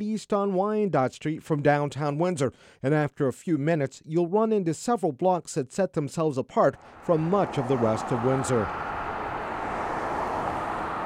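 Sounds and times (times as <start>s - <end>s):
speech: 0.0s - 9.0s
passing cars and buses on a busy street: 6.8s - 11.0s.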